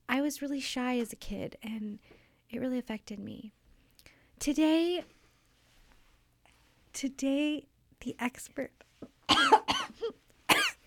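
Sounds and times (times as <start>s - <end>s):
speech: 0.3s - 3.6s, 4.4s - 5.2s, 6.9s - 10.2s
person coughing: 9.3s - 10.8s.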